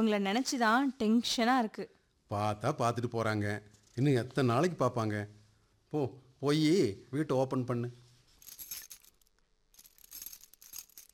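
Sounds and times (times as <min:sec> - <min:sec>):
speech: 0:00.0 - 0:08.0
keys jingling and scraping in the lock of a house door: 0:08.4 - 0:11.1.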